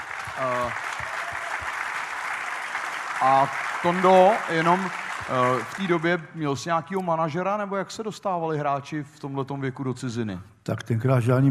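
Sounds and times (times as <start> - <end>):
crowd applause: 0.0 - 6.6
speech: 0.4 - 1.0, 3.2 - 11.4
person whooping: 0.5 - 1.7.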